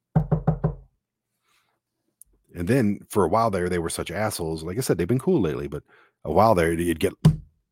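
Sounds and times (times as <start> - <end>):
quick dull knocks on a wall: 0.1 - 0.8, 7.2 - 7.7
speech: 2.6 - 7.3.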